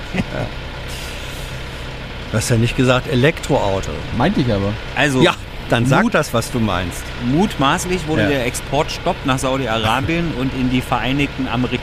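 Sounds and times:
laughter: 0:00.0 - 0:00.5, 0:09.8 - 0:10.4
car engine running with low rumble and airy hiss: 0:00.0 - 0:11.8
speech: 0:02.3 - 0:11.8.

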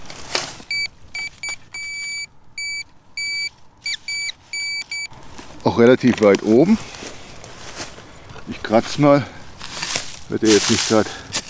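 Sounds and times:
metal detector beeping for non-ferrous metal: 0:00.6 - 0:05.2
speech: 0:05.8 - 0:07.0, 0:08.7 - 0:09.4, 0:10.3 - 0:11.2.

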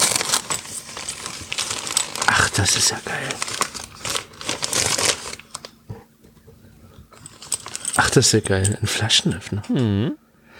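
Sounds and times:
package being torn open: 0:00.0 - 0:05.8
packaging crinkling and rustling: 0:00.0 - 0:05.8, 0:07.2 - 0:08.1
speech: 0:02.6 - 0:03.7, 0:08.2 - 0:10.2.

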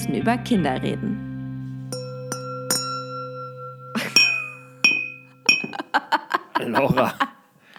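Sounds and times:
speech: 0:00.0 - 0:01.3, 0:06.7 - 0:07.3
small hammer tapping a wine glass: 0:01.9 - 0:05.8
laughter: 0:05.6 - 0:07.5.

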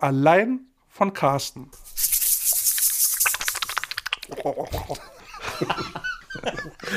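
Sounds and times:
speech: 0:00.0 - 0:02.2, 0:04.3 - 0:06.9
hands rubbing together: 0:01.7 - 0:04.9
laughter: 0:04.3 - 0:06.9.

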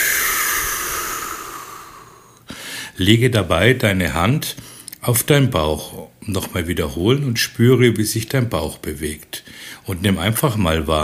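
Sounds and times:
deep breath exhaled slowly: 0:00.0 - 0:03.0
speech: 0:03.0 - 0:11.0.

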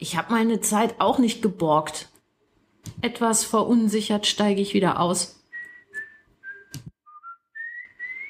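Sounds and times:
speech: 0:00.0 - 0:02.1, 0:02.8 - 0:05.4
person whistling a short melodic tune: 0:05.5 - 0:08.2.

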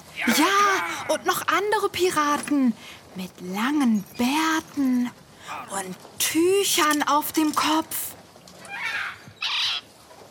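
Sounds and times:
speech: 0:00.2 - 0:08.1
parrot squawking aboard an anchored pirate ship: 0:08.7 - 0:09.9.

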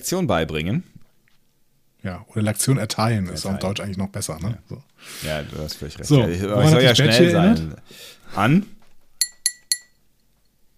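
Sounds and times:
speech: 0:00.0 - 0:00.9, 0:02.0 - 0:08.8
pop-up chime of Office paperclip assistant, bright glassy pings: 0:09.2 - 0:10.0.

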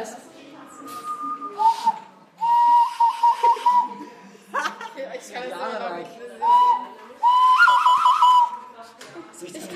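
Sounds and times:
person whistling through pursed lips: 0:00.7 - 0:04.0, 0:06.4 - 0:08.6
laughter: 0:03.1 - 0:05.4.

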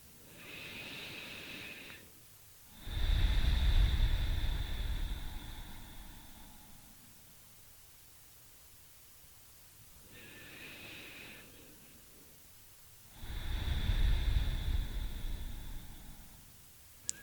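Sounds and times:
deep breathing in through nose and out through mouth: 0:00.2 - 0:07.3, 0:10.0 - 0:12.2, 0:13.1 - 0:16.7.

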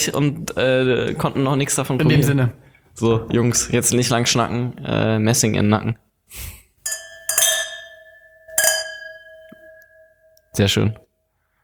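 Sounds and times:
speech: 0:00.0 - 0:06.6, 0:10.6 - 0:11.0
wine glasses clinking in a toast: 0:06.9 - 0:10.8.

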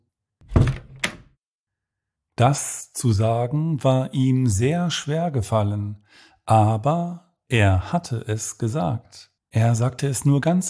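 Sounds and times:
door swinging shut with a solid thump: 0:00.4 - 0:01.3
door latch clicking: 0:00.5 - 0:01.3
speech: 0:02.4 - 0:10.6.

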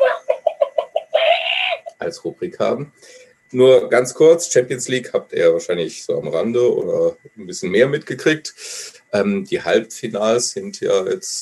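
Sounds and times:
chickens clucking and cackling: 0:00.0 - 0:02.0
speech: 0:02.1 - 0:11.3.

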